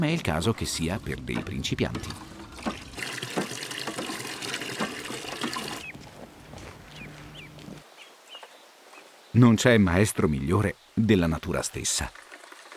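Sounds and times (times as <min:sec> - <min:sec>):
speech: 0:00.0 - 0:02.3, 0:09.4 - 0:12.2
water splashing in a farm drinking trough: 0:00.0 - 0:07.8, 0:12.0 - 0:12.7.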